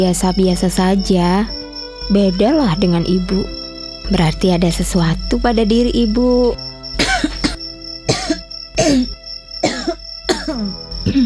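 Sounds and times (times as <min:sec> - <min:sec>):
speech: 0:00.0 - 0:06.6
harsh coughs in quick bursts: 0:07.0 - 0:11.2.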